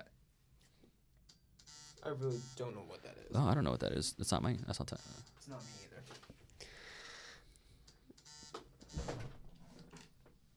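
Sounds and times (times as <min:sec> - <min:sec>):
phone alarm with buzzy electronic tone and harsh beeping: 0:01.6 - 0:02.8, 0:04.6 - 0:06.0, 0:08.2 - 0:09.0
speech: 0:02.0 - 0:06.4.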